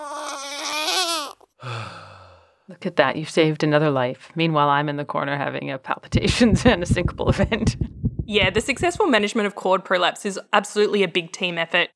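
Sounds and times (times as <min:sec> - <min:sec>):
newborn baby girl crying after emergency cesarean: 0:00.0 - 0:01.5
speech: 0:02.7 - 0:11.9.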